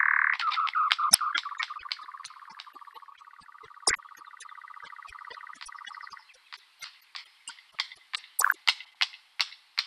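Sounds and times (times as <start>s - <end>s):
European nightjar churring: 0.2s - 9.0s
European nightjar sharp clicks: 0.3s - 9.8s.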